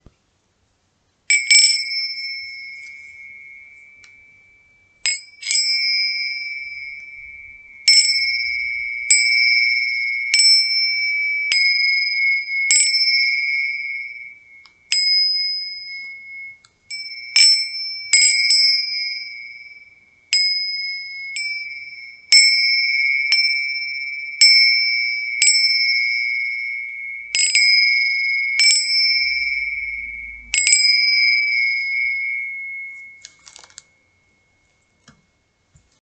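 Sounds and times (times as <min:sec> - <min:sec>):
tingsha cymbals ringing: 0:01.3 - 0:35.7.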